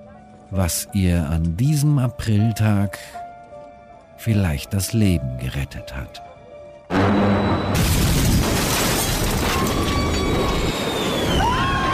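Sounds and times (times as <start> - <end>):
speech: 0.5 - 3.2, 4.2 - 6.3
loud explosive bang: 6.9 - 11.3
roaring crackling aftermath noise of an explosion: 6.9 - 11.9.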